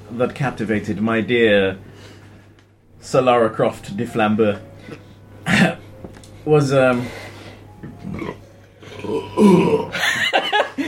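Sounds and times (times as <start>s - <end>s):
speech: 0.1s - 2.2s, 3.0s - 5.8s, 6.4s - 7.2s, 9.1s - 10.1s
loud belch: 8.0s - 10.0s
laughter: 9.9s - 10.8s.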